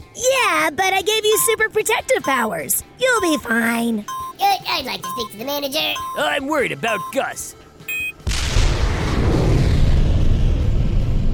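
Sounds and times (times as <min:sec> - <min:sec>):
speech: 0:00.2 - 0:07.6
rocket launching roar: 0:08.2 - 0:11.3.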